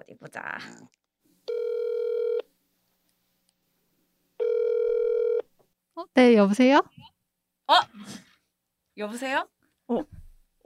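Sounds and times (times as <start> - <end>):
speech: 0.0 - 1.0, 6.0 - 7.1, 7.7 - 8.2, 9.0 - 10.6
telephone ringback tone as a phone call is connected: 1.5 - 2.5, 4.4 - 5.4.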